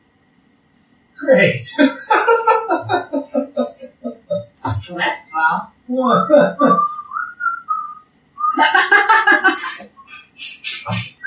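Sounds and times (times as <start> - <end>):
speech: 1.3 - 2.4, 4.9 - 6.8
breathy laughter: 1.8 - 4.6, 8.6 - 11.1
person whistling a short tune: 6.7 - 8.6.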